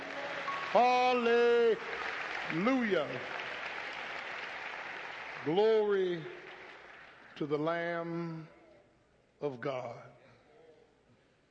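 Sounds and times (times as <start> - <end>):
crowd clapping: 0.0 - 8.4
speech: 0.7 - 3.4, 5.4 - 6.4, 7.4 - 8.6, 9.4 - 10.2.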